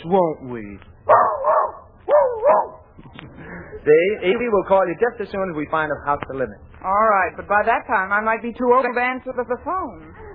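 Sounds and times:
speech: 0.0 - 1.6, 3.0 - 10.2
small dog barking with whining yelps: 1.1 - 2.9.

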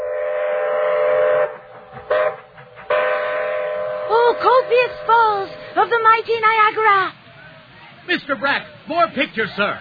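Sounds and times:
loud train whistle blasts: 0.0 - 5.8
low rumble of the moving train: 0.0 - 9.7
speech: 4.7 - 7.2, 8.1 - 9.7.

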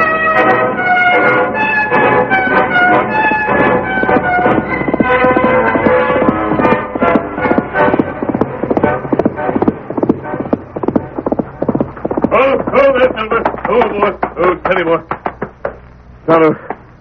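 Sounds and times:
sustained tonal background: 0.0 - 17.0
horse hooves clip-clopping: 2.5 - 15.8, 16.7 - 17.0.

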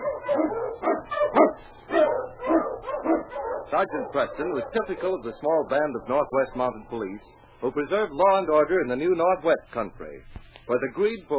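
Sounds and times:
sled dog barking and yipping in snow: 0.0 - 5.1
speech: 3.7 - 11.3.

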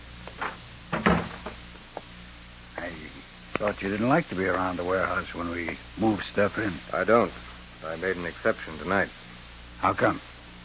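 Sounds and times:
warehouse door closing: 0.4 - 1.6
speech: 3.6 - 9.2, 9.8 - 10.3.

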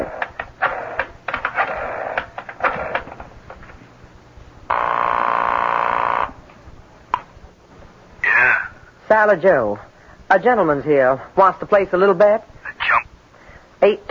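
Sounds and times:
loud buzzing telephone ring: 0.0 - 3.2, 4.7 - 6.4
speech: 9.1 - 12.5, 13.8 - 14.0.

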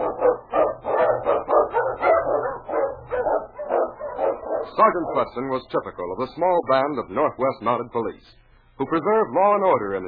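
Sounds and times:
sled dog barking and yelping: 0.0 - 5.4
speech: 4.8 - 10.0.

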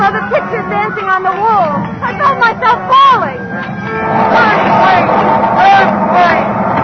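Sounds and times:
speech: 0.9 - 3.4
earthquake rumbling: 1.5 - 6.8
many voices screaming and shouting: 2.2 - 6.8.

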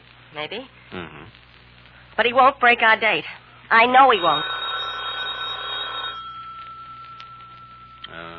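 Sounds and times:
speech: 0.3 - 1.4, 2.2 - 4.5
telephone ringing: 3.9 - 8.3.

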